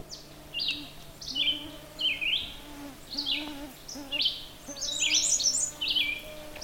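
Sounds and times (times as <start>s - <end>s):
birdsong: 0.0s - 6.6s
male American Redstart song: 0.0s - 6.6s.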